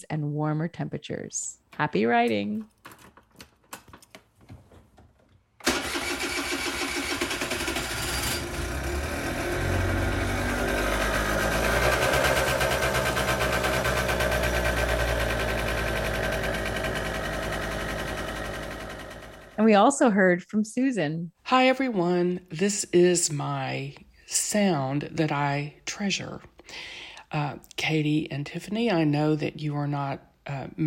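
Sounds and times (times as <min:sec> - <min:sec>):
speech: 0:00.0 - 0:03.0, 0:19.6 - 0:30.8
Vespa scooter engine starting and idling: 0:05.6 - 0:19.6.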